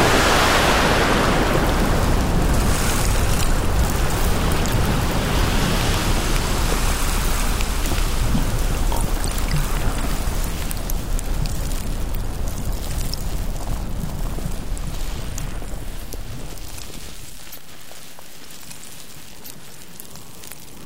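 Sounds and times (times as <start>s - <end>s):
roar of rushing sea water and surf: 0.0s - 16.1s.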